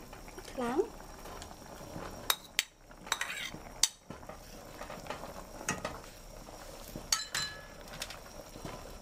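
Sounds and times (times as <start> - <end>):
mushrooms and meat sizzling softly in a pot: 0.0 - 9.0
speech: 0.6 - 1.0
spoon scraping and clinking against a metal pot of mushrooms and meat: 3.1 - 3.6.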